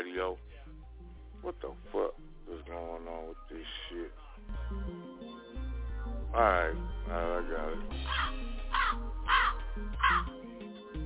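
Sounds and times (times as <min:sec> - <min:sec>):
steady low musical drone: 0:00.0 - 0:11.0
speech: 0:00.2 - 0:00.6, 0:01.4 - 0:05.4, 0:06.3 - 0:08.2
harsh raspy hawk calls: 0:07.9 - 0:10.4.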